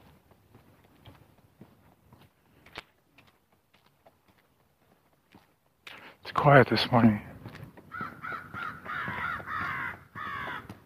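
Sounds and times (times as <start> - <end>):
speech: 6.4 - 7.3
crows cawing in the woods: 7.8 - 10.8.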